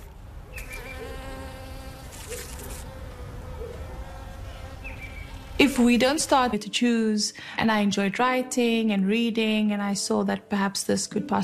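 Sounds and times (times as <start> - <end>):
bees buzzing around a backyard hive: 0.5 - 6.5
speech: 5.6 - 11.4.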